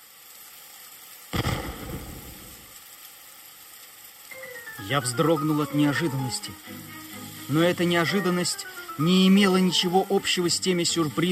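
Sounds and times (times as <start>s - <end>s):
steady hiss: 0.0s - 11.3s
cannon shot on a stormy night from the sea: 1.3s - 2.7s
speech: 4.8s - 11.3s.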